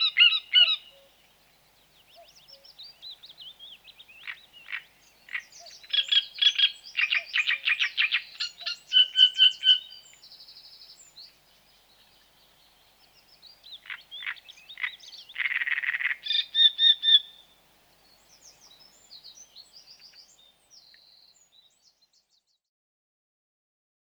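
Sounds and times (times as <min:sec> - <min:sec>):
great reed warbler song: 0:00.0 - 0:22.5.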